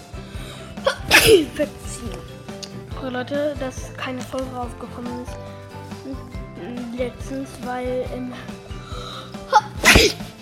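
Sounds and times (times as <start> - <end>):
single sharp human sneeze: 0.8 - 1.5, 9.5 - 10.3
speech: 1.2 - 2.2, 3.0 - 6.3, 7.0 - 8.6, 10.0 - 10.3.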